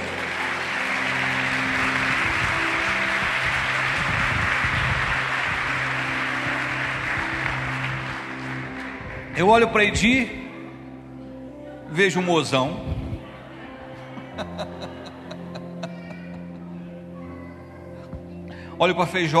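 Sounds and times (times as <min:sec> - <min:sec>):
audience applauding: 0:00.0 - 0:10.5
speech: 0:09.4 - 0:10.4, 0:12.0 - 0:13.0, 0:18.8 - 0:19.3
laughter: 0:13.4 - 0:17.0.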